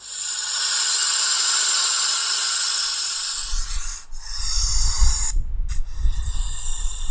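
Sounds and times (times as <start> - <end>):
snake hissing, air forced from lungs: 0.0 - 7.1.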